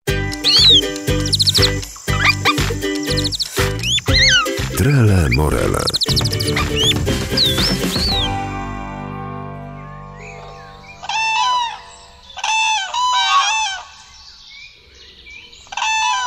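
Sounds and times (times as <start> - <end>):
birds squawking in harsh bursts: 0.4 - 8.4, 10.8 - 14.2
speech: 4.8 - 6.9.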